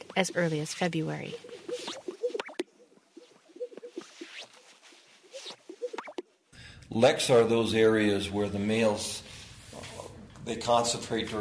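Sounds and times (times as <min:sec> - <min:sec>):
speech: 0:00.2 - 0:01.5, 0:06.9 - 0:09.2, 0:10.4 - 0:11.3
Gunnison sage-grouse display soft hollow pops: 0:01.3 - 0:04.5, 0:05.3 - 0:06.3.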